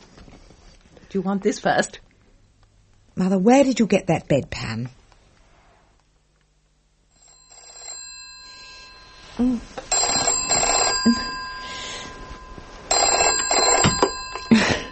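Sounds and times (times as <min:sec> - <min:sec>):
speech: 0:01.1 - 0:02.0, 0:03.2 - 0:05.0
old-fashioned telephone bell ringing: 0:07.1 - 0:14.9.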